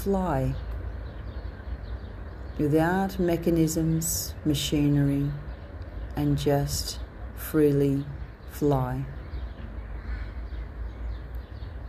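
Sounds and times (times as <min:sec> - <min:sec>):
speech: 0:00.0 - 0:00.6, 0:02.6 - 0:05.4, 0:06.2 - 0:09.2
steady low outdoor rumble: 0:00.0 - 0:11.8
crows cawing: 0:09.8 - 0:10.8.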